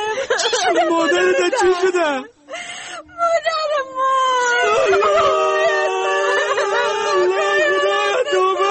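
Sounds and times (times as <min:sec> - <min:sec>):
laughter: 0:00.2 - 0:02.3, 0:04.6 - 0:08.7
speech: 0:00.7 - 0:02.4
woman wailing in a high-pitched cry: 0:04.1 - 0:08.7.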